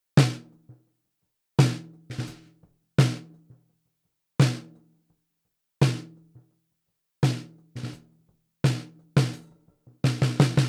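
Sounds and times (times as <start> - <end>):
debled snare drum: 0.2 - 0.4, 1.6 - 3.2, 8.7 - 9.4, 10.0 - 10.6.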